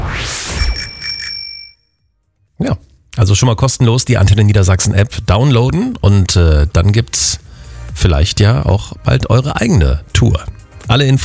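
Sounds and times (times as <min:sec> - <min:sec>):
bicycle bell ringing in trills: 0:00.6 - 0:01.9
speech: 0:02.6 - 0:07.4, 0:08.0 - 0:11.2.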